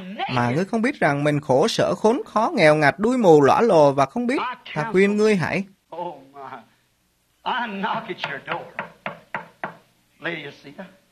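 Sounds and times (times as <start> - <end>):
speech: 0.2 - 5.7, 7.4 - 8.8, 10.2 - 11.0
sharp raps knocking on a door: 7.9 - 9.9.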